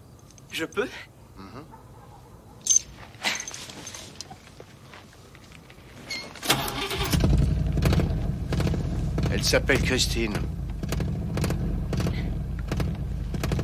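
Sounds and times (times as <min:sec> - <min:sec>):
speech: 0:00.5 - 0:01.8, 0:09.4 - 0:10.5
car engine cranking and starting into idle: 0:06.4 - 0:13.6.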